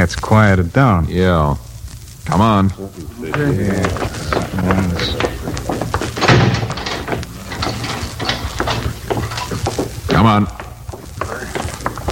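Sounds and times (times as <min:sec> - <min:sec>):
speech: 0:00.0 - 0:01.7, 0:02.3 - 0:05.6, 0:10.2 - 0:10.6
laughter: 0:02.8 - 0:09.2
heavy door rattling: 0:04.3 - 0:10.1
heavy door clanking open: 0:05.2 - 0:09.9
heavy door slamming shut: 0:06.1 - 0:09.5.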